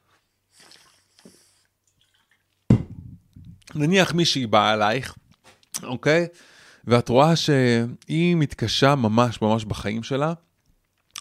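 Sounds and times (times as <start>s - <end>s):
person slurping water: 0.6s - 2.6s
cup knocking: 2.7s - 3.2s
speech: 3.8s - 5.2s, 5.9s - 10.5s.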